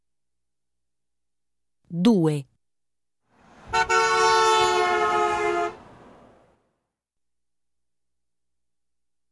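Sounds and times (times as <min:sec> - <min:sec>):
speech: 0:01.9 - 0:02.5
car horn: 0:03.7 - 0:05.9.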